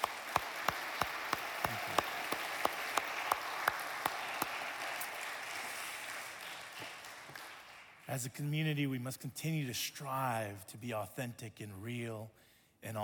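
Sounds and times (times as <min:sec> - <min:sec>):
audience applauding: 0:00.0 - 0:08.1
loud rhythmic clap: 0:00.0 - 0:08.2
speech: 0:08.1 - 0:13.0.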